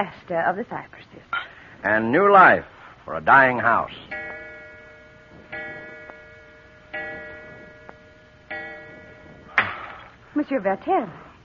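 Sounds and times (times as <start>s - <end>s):
speech: 0.0s - 4.2s, 10.4s - 11.2s
clock chiming in bright resonant strikes: 3.3s - 11.0s.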